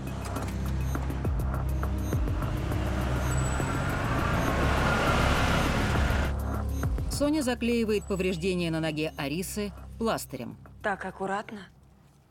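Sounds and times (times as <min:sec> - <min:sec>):
car engine starting at night: 0:00.0 - 0:07.1
speech: 0:07.2 - 0:11.8.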